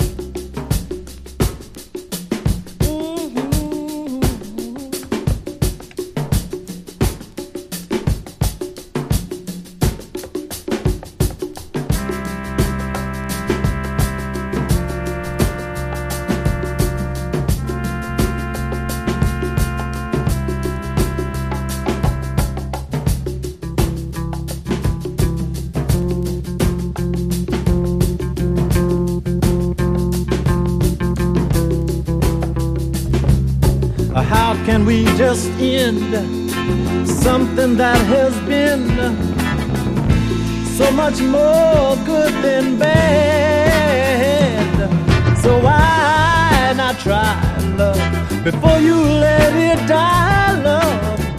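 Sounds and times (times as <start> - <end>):
drum break: 0.0 - 51.3.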